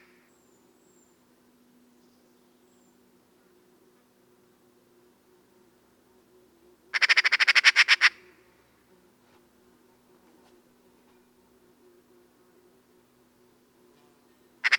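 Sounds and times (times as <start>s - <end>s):
Eurasian magpie rasping rattle chatter: 7.0s - 8.2s.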